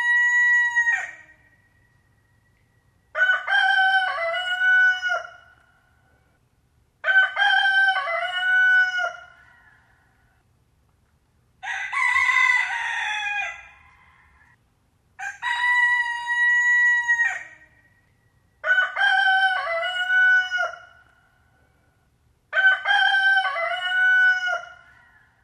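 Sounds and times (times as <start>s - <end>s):
rooster crowing: 0.0s - 1.3s, 3.1s - 5.5s, 7.0s - 10.3s, 11.6s - 14.6s, 15.2s - 17.7s, 18.6s - 21.0s, 22.5s - 25.4s.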